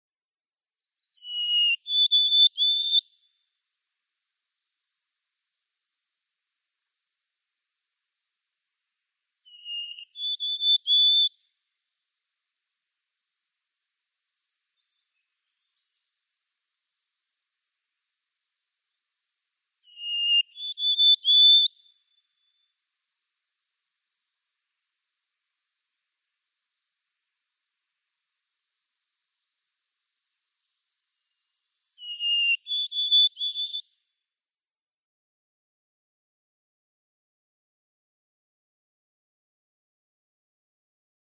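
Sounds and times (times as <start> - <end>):
White-throated Sparrow song: 1.0 - 3.5, 9.4 - 11.6, 13.9 - 17.2, 19.8 - 22.9, 30.5 - 34.1.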